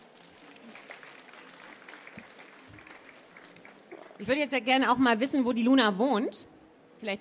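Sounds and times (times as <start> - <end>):
crowd applauding: 0.0 - 4.3
speech: 4.2 - 7.2.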